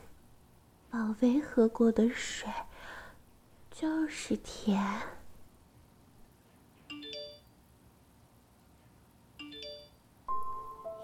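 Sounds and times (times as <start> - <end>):
speech: 0.9 - 2.7, 3.8 - 5.2
mobile phone ringing with a short electronic chiming melody: 6.9 - 7.5, 9.4 - 11.0.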